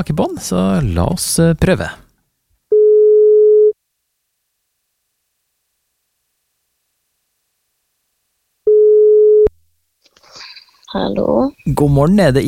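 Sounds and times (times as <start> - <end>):
speech: 0.0 - 2.0, 10.9 - 12.4
telephone ringback tone: 2.7 - 3.7, 8.7 - 9.5.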